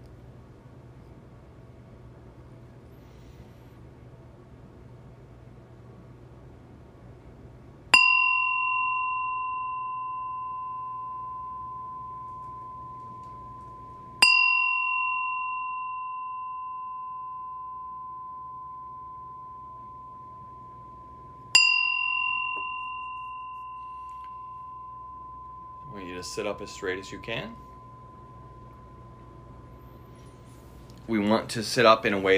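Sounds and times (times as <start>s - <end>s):
meditation bell rung to begin a meditation: 7.9s - 32.3s
speech: 26.0s - 27.6s, 31.1s - 32.3s.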